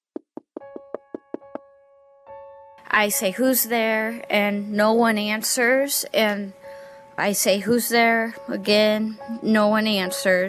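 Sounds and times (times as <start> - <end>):
firm knocking on a door: 0.1 - 1.6
speech: 2.9 - 6.6, 7.2 - 10.4.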